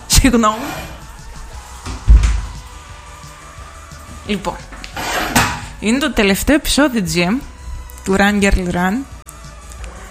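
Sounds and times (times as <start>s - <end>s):
speech: 0.2s - 0.9s, 4.3s - 4.8s, 5.8s - 9.1s
door pushed shut with a dull low thud: 1.9s - 2.6s.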